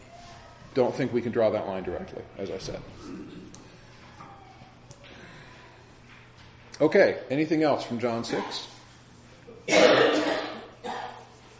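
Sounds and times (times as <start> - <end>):
speech: 0.8 - 3.5, 6.8 - 8.7
harsh rasping cough in a room: 9.7 - 11.3.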